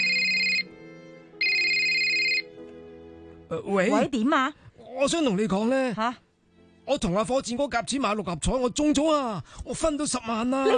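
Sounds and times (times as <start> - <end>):
telephone ringtone: 0.0 - 0.7, 1.4 - 2.5
speech: 3.5 - 6.2, 6.9 - 10.7.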